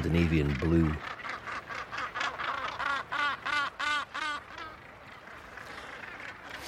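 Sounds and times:
speech: 0:00.0 - 0:01.1
background noise: 0:00.0 - 0:06.6
Northern Gannet calling at colony: 0:00.2 - 0:06.6.

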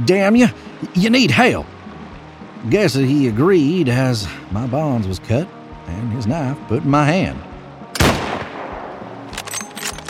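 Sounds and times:
speech: 0:00.0 - 0:01.7, 0:02.6 - 0:07.5
rifle shot: 0:08.0 - 0:09.5.

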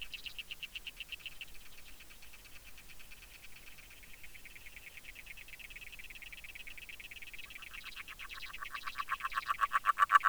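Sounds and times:
agile frog calling underwater in a pond: 0:08.4 - 0:10.2.

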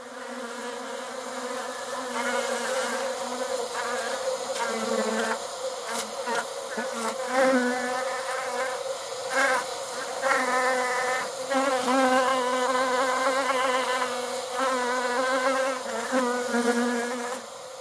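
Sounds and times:
reconstructed honeybee swarm buzzing: 0:00.0 - 0:17.7.

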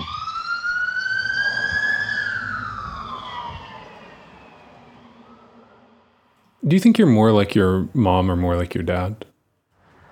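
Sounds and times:
emergency vehicle siren wailing: 0:00.0 - 0:07.4
low rumble of traffic: 0:00.0 - 0:09.0
speech: 0:06.7 - 0:09.3.

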